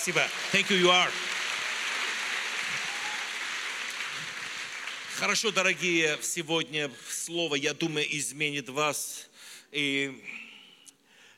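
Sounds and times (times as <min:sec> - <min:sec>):
speech: 0:00.0 - 0:01.3, 0:05.2 - 0:10.4
audience applause: 0:00.0 - 0:06.3.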